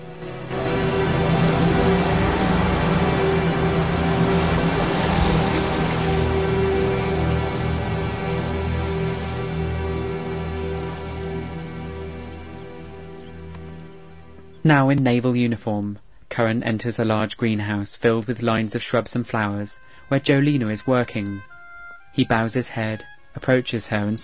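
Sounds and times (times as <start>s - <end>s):
rubber dinghy motor pulling away from a waterfront at night: 0.0s - 14.6s, 21.3s - 22.1s
speech: 14.7s - 21.5s, 22.1s - 24.2s.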